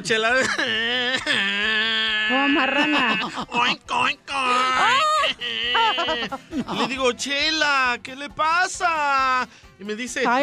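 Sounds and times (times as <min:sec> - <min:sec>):
speech: 0:00.0 - 0:10.4
laughter: 0:00.1 - 0:07.4
person imitating crying whimpers: 0:00.4 - 0:03.3, 0:04.4 - 0:06.4.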